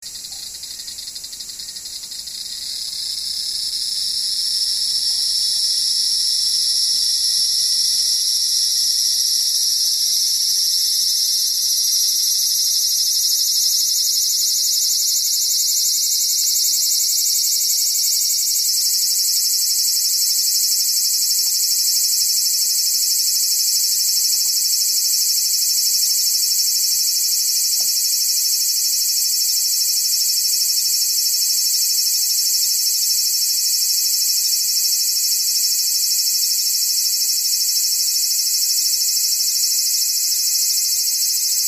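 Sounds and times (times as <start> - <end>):
aburazemi cicada: 0.0 - 41.6.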